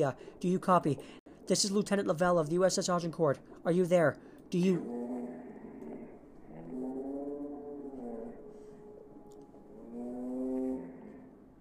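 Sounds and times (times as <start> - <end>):
speech: 0.0 - 5.4
deep groaning sea monster roar: 4.8 - 8.5, 9.7 - 11.4.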